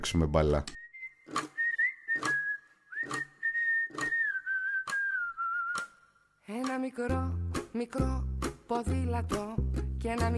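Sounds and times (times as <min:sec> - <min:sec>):
speech: 0:00.0 - 0:01.4, 0:06.8 - 0:10.3
person whistling a steady wavering tune: 0:00.8 - 0:06.1.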